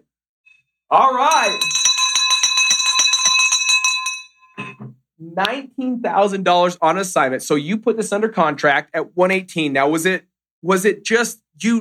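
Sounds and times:
speech: 0.9s - 1.8s, 5.2s - 11.7s
bright handbell rung rapidly: 1.3s - 4.8s.

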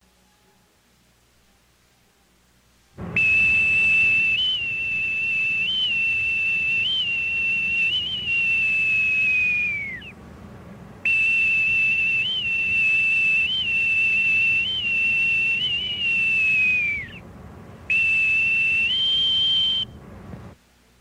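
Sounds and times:
bosun's whistle piping a call: 3.0s - 10.2s, 11.0s - 20.0s.

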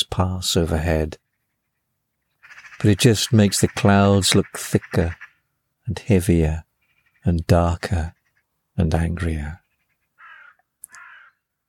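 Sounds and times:
speech: 0.2s - 1.2s, 2.8s - 5.2s, 5.9s - 8.2s, 8.8s - 9.6s
crows cawing around trees in a field: 1.3s - 2.8s, 5.1s - 5.5s, 9.6s - 11.6s.

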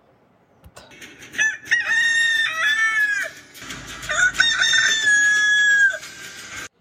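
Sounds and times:
rooster crowing: 1.4s - 3.4s, 4.0s - 6.1s.

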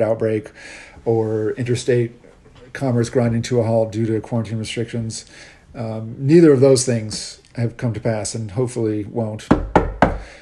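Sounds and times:
speech: 0.0s - 10.4s
loud sharp knocks on a wooden table: 9.5s - 10.2s.

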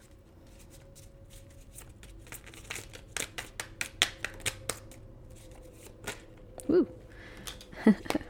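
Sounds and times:
tarot cards being shuffled: 0.5s - 6.5s.

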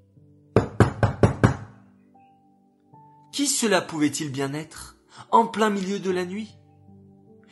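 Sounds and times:
firm knocking on a wooden door: 0.6s - 1.8s
speech: 3.4s - 6.6s.

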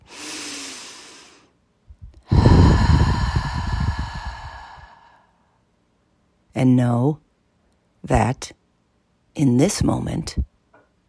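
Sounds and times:
deep breath drawn and released: 0.0s - 1.6s, 2.2s - 5.6s
speech: 6.6s - 7.2s, 8.0s - 8.6s, 9.4s - 10.5s.

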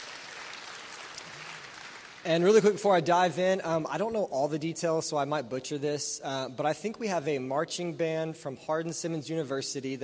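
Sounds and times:
church audience applauding: 0.0s - 2.4s
speech: 2.2s - 10.0s.

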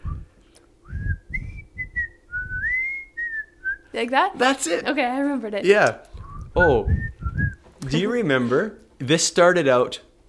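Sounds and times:
low thumps: 0.0s - 0.3s, 0.9s - 2.9s, 6.2s - 7.7s
person whistling a bouncy TV theme tune: 0.0s - 3.9s, 6.2s - 7.6s
speech: 4.0s - 7.0s, 7.8s - 10.1s.

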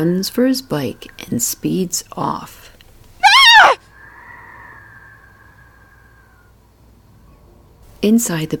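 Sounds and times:
speech: 0.0s - 2.7s, 8.0s - 8.5s
high-pitched scream from inside a building: 3.2s - 6.5s.

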